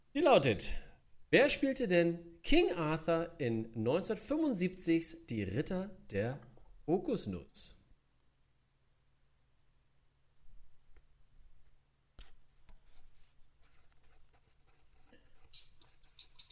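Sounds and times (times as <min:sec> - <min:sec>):
speech: 0:00.2 - 0:07.8
pens scratching and squeaking on paper as quiz players write: 0:12.2 - 0:16.5.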